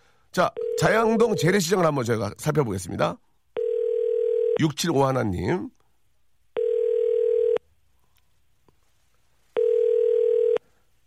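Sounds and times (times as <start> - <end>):
speech: 0.4 - 3.3, 4.6 - 5.8
telephone ringback tone: 3.6 - 4.6, 6.6 - 7.6, 9.6 - 10.6.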